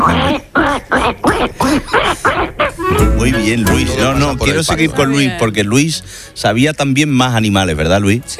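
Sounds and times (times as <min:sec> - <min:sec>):
child imitating duck quacks: 0:00.0 - 0:03.2
speech: 0:03.4 - 0:08.3.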